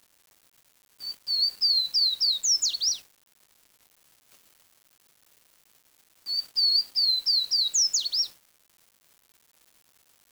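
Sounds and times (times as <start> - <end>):
bird calling high whistled slurs: 1.1 - 3.0, 6.3 - 8.3.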